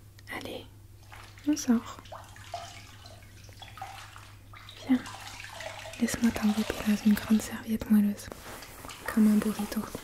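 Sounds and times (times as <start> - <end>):
small water splashes in a bathtub: 1.0 - 7.6, 8.6 - 10.0
water sloshing and trickling as a child's hair is rinsed in a bathtub: 1.0 - 10.0
speech: 1.4 - 2.1, 6.0 - 8.6, 9.2 - 10.0.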